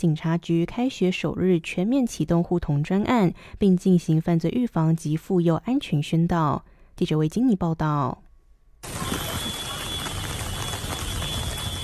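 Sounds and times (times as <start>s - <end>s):
speech: 0.0s - 8.2s
steady rain spattering on surfaces: 8.8s - 11.8s.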